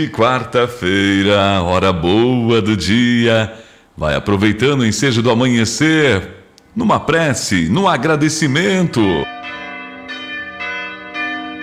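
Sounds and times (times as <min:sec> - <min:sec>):
parish church bells ringing at 6 a.m.: 0:00.0 - 0:01.3, 0:07.6 - 0:11.6
speech: 0:00.0 - 0:09.6.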